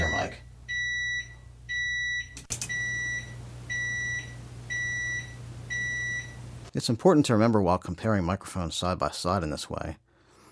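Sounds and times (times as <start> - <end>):
oven timer beeping: 0.0 - 6.5
sharp click: 2.4 - 2.8
speech: 6.8 - 10.0.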